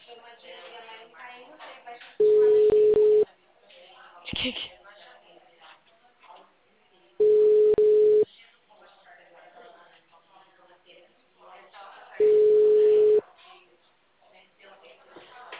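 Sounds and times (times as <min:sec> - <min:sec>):
people talking: 0:00.0 - 0:13.7
telephone line tone beeps on a failed call: 0:02.2 - 0:03.2, 0:07.2 - 0:08.2, 0:12.2 - 0:13.2.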